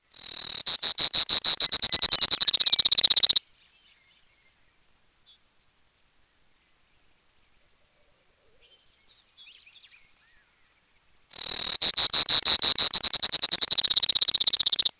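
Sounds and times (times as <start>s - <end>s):
Brewer's sparrow calling: 0.1s - 3.4s, 11.3s - 14.9s.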